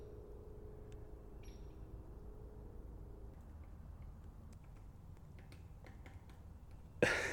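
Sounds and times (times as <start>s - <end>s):
biplane engine drone flying over a swamp: 0.0s - 7.3s
downy woodpecker hammering on wood in a swamp: 3.6s - 7.0s
laughter: 7.0s - 7.3s.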